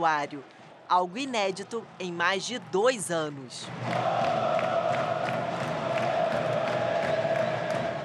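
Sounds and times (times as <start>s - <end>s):
speech: 0.0s - 4.4s
large crowd of football fans cheering and chanting at an open training session: 0.6s - 8.0s
claps or shouts: 3.7s - 8.0s.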